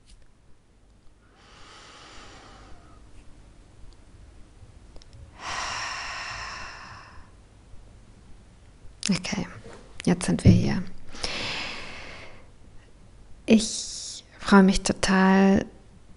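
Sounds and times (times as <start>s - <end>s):
slow deliberate breathing into a microphone: 1.2s - 3.2s, 5.3s - 7.4s, 11.1s - 12.6s
speech: 9.1s - 10.9s, 13.5s - 13.9s, 14.5s - 15.8s.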